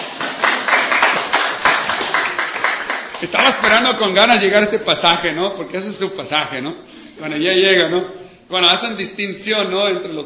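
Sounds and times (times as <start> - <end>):
crowd applauding: 0.0 - 4.0
speech: 3.2 - 10.2.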